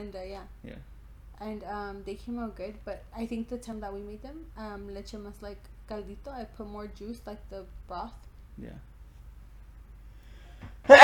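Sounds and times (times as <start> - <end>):
speech: 0.0 - 8.9, 10.8 - 11.0
quiet intake of breath: 10.1 - 10.7
loud sneeze: 10.9 - 11.0.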